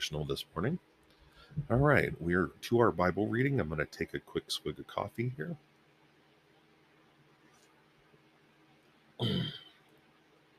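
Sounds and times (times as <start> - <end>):
speech: 0.0 - 5.7
short forceful throat-clearing cough: 9.2 - 9.8.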